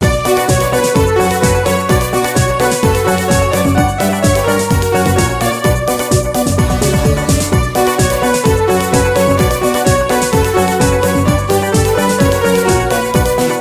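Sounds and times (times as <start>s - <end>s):
modern disco ringtone: 0.0s - 13.6s.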